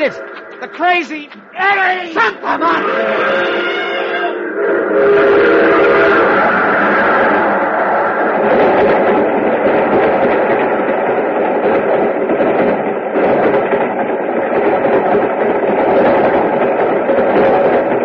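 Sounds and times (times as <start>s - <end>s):
speech: 0.0s - 3.8s, 4.6s - 6.5s
train rushing by with loud rumble and clatter: 0.0s - 18.0s
laughter: 1.4s - 4.1s
train horn with layered steady tones: 2.6s - 7.5s.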